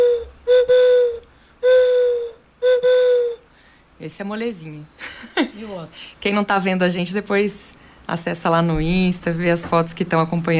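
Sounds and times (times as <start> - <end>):
wooden bird-call whistle imitating a juriti dove blown in hollow hoots: 0.0 - 3.4
speech: 4.0 - 10.5.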